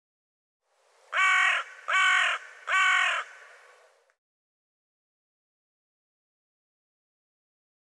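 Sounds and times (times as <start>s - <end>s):
bird cawing hoarsely: 1.1s - 3.8s.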